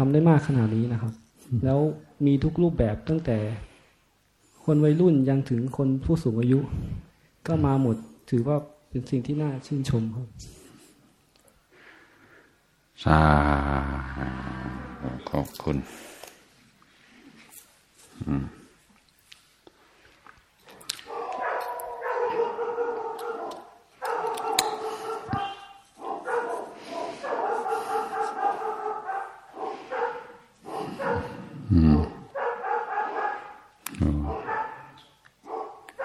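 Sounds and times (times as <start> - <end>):
speech: 0.0 - 3.7, 4.7 - 10.6, 13.0 - 16.1, 18.2 - 18.6
dogs barking: 21.0 - 31.6, 32.3 - 36.0.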